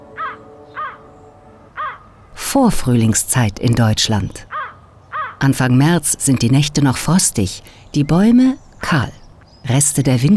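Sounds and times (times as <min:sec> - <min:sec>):
faint noise: 0:00.0 - 0:10.3
crows from an early-spring flock in Germany cawing: 0:00.1 - 0:01.1, 0:01.7 - 0:02.2, 0:04.5 - 0:05.4
speech: 0:02.5 - 0:04.5, 0:05.4 - 0:10.3.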